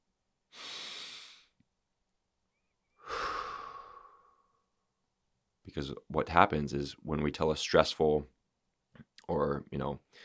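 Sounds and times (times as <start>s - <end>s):
person taking long breathy breaths in a paced breathing exercise: 0.5s - 1.5s, 3.0s - 4.7s
speech: 5.8s - 8.4s, 9.3s - 10.2s.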